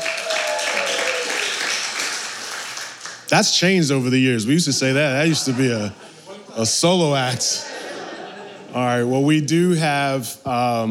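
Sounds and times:
crowd clapping hands in applause: 0.0s - 3.6s
speech: 3.3s - 6.0s, 6.6s - 7.7s, 8.7s - 10.8s
laughter: 4.8s - 9.2s.

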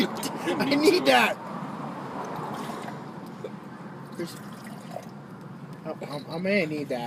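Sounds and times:
speech: 0.0s - 1.4s, 4.2s - 4.5s, 5.9s - 7.0s
water pouring into a glass: 4.4s - 5.1s.

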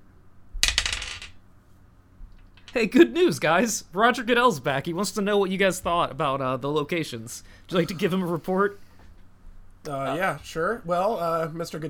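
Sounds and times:
dice tumbling across a hard surface: 0.6s - 1.4s
speech: 2.8s - 8.8s, 9.8s - 11.8s.

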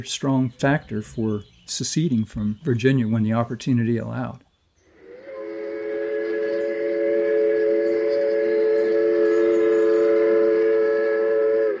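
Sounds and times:
speech: 0.0s - 4.5s
steam train whistle blowing: 4.9s - 11.7s.

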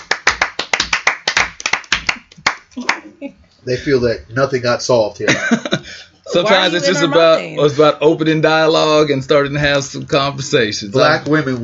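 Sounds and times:
applause from a small group: 0.0s - 3.0s
speech: 2.8s - 11.6s
laughter: 5.2s - 7.8s.

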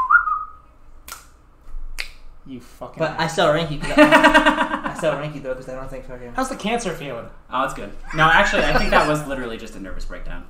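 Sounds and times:
short steady whistled note: 0.0s - 0.6s
sharp click-like snap: 1.0s - 1.4s
speech: 2.5s - 10.4s
laughter: 3.8s - 5.2s, 8.0s - 9.4s.

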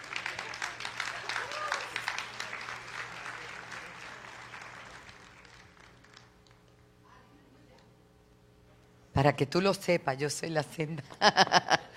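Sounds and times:
audience applauding in a large room: 0.0s - 6.8s
speech: 9.2s - 11.8s
laughter: 11.0s - 11.9s.

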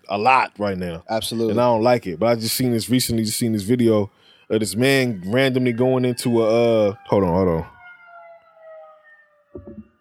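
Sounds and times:
speech: 0.1s - 7.8s
fire truck siren wailing: 1.1s - 9.9s
short low thumps or bumps: 9.5s - 9.9s.

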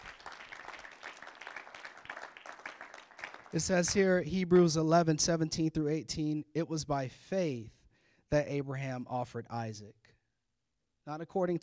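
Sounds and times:
congregation applauding: 0.0s - 4.0s
speech: 3.5s - 10.2s, 11.1s - 11.6s.

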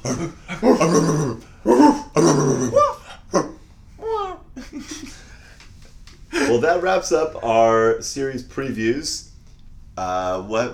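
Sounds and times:
speech: 0.0s - 1.5s, 6.8s - 9.3s, 10.0s - 10.7s
dogs barking: 0.0s - 4.2s
laughter: 0.0s - 5.4s, 6.3s - 7.1s.

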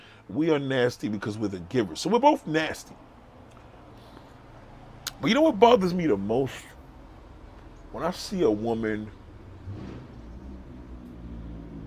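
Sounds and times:
speech: 0.3s - 3.1s, 5.2s - 6.7s, 7.9s - 10.1s
car engine revving loudly outside: 8.8s - 11.8s.

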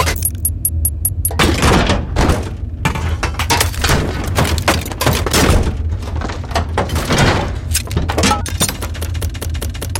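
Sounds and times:
knocks and scrapes of gears and fittings: 0.0s - 9.9s
faint high ringing chirps: 0.1s - 1.4s
mechanical clatter of metal parts: 2.8s - 9.2s.

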